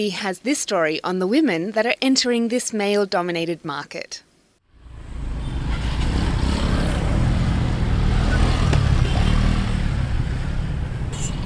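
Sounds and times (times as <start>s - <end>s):
speech: 0.0s - 4.3s
dense city traffic roar in Jakarta: 4.7s - 11.4s
motorbikes buzzing and revving in Jakarta city traffic: 4.8s - 11.4s.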